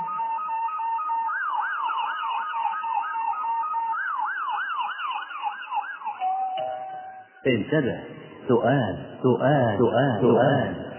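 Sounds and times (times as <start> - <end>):
police car siren wailing: 0.0 - 7.4
speech: 7.4 - 10.8.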